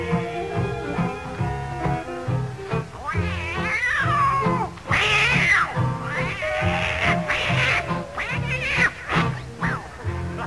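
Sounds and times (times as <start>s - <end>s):
tomcats yowling and caterwauling in a fight: 0.0s - 10.4s.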